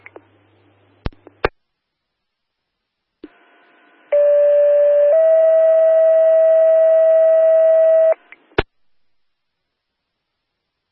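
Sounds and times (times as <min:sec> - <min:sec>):
two-part fire dispatch alert tone for a second alarm to a motor vehicle accident: 0:04.2 - 0:08.2.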